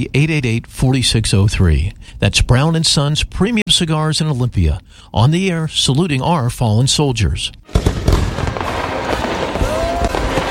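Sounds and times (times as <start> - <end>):
speech: 0.0 - 8.0
fireworks booming and crackling: 7.7 - 10.4.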